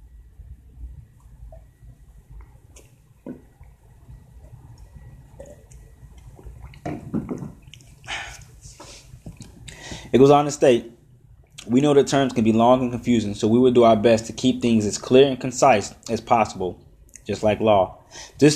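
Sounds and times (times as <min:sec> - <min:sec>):
low rumble: 0:00.0 - 0:14.8
wet mouth sounds: 0:01.2 - 0:09.8
person sipping water: 0:01.2 - 0:10.0
gulping: 0:05.3 - 0:08.6
speech: 0:10.1 - 0:11.0, 0:11.7 - 0:18.5.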